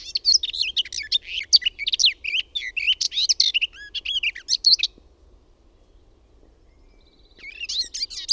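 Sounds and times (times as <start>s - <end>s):
garden warbler singing: 0.0s - 5.0s, 5.6s - 8.3s.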